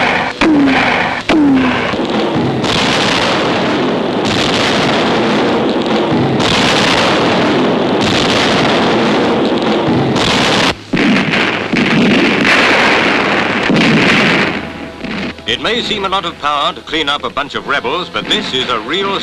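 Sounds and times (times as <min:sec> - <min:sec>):
artillery gunfire during an attack on a rebel-held jungle fort: 0:00.0 - 0:15.4
speech: 0:15.6 - 0:19.2.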